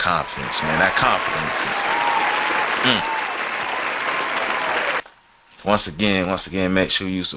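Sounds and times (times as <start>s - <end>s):
speech: 0.0s - 2.2s, 2.8s - 3.2s, 5.6s - 7.3s
crowd applauding with hand clapping: 0.0s - 5.0s
voice cheering: 0.0s - 5.0s.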